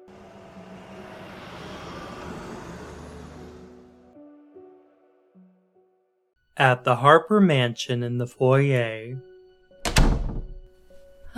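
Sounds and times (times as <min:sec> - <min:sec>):
car engine roaring while driving off: 0:00.0 - 0:04.2
speech: 0:06.6 - 0:09.3.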